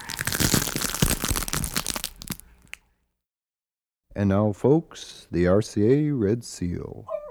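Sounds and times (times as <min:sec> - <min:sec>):
crunching footstep effect of an astronaut stepping onto Mars: 0:00.0 - 0:02.8
speech: 0:04.2 - 0:07.2.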